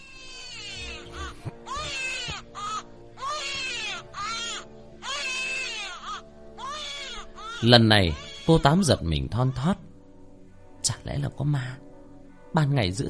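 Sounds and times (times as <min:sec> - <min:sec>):
person crying inside a locked room: 0:00.8 - 0:05.9
speech: 0:07.6 - 0:09.9, 0:11.0 - 0:11.9, 0:12.5 - 0:13.0.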